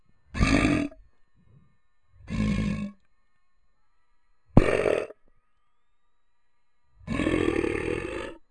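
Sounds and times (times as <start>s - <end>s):
growling: 0.3s - 1.0s, 2.2s - 3.0s, 4.6s - 5.2s, 7.0s - 8.4s.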